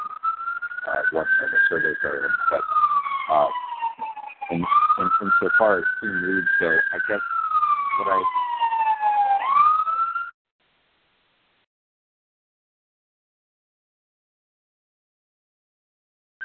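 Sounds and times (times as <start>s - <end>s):
fire engine siren wailing: 0.0s - 10.4s
speech: 0.9s - 3.6s, 4.5s - 7.3s, 8.0s - 8.5s.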